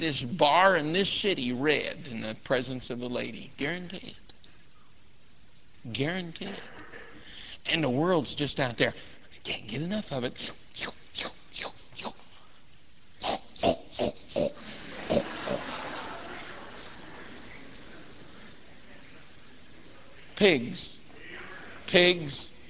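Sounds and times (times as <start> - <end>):
speech: 0.0 - 4.2, 5.8 - 6.7, 7.6 - 12.2, 20.4 - 21.0, 21.9 - 22.5
pigs grunting and snorting: 13.2 - 15.6
laughter: 14.5 - 20.1, 21.1 - 22.2.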